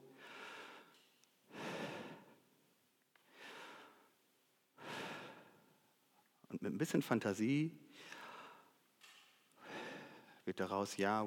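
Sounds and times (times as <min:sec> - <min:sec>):
loud deliberate breathing in and out: 0:00.0 - 0:02.5, 0:03.3 - 0:04.2, 0:04.8 - 0:05.8, 0:07.9 - 0:08.8, 0:09.6 - 0:10.4
speech: 0:06.6 - 0:08.2, 0:10.5 - 0:11.2.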